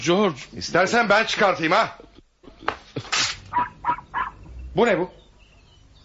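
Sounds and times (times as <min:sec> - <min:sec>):
speech: 0:00.0 - 0:03.7, 0:04.8 - 0:05.2
puppy inside a man's shirt whimpering: 0:03.5 - 0:04.5.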